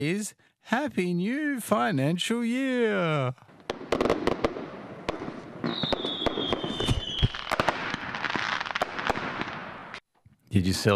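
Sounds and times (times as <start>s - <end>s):
speech: 0.0s - 4.2s, 10.5s - 10.9s
fireworks crackling and popping: 3.5s - 10.1s
whistling rocket streaking upward: 4.1s - 10.0s.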